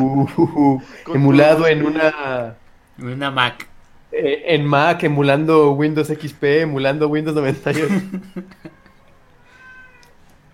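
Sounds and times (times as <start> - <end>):
laughter: 0.0 - 2.5, 7.4 - 9.2
speech: 0.0 - 8.8
cat meowing: 8.6 - 10.3.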